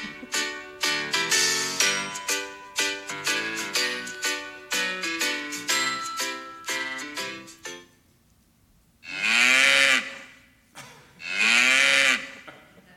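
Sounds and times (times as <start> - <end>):
upbeat music: 0.0 - 7.9
cow mooing: 9.0 - 10.3, 11.2 - 12.4.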